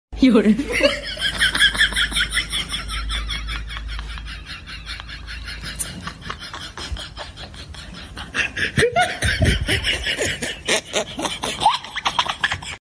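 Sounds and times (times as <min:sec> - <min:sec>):
person laughing: 0:00.6 - 0:12.7.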